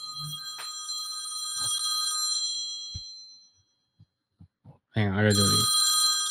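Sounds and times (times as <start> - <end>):
loud continuous metallic bell of an old telephone ringing: 0.0 - 3.5, 5.3 - 6.2
speech: 5.0 - 5.8.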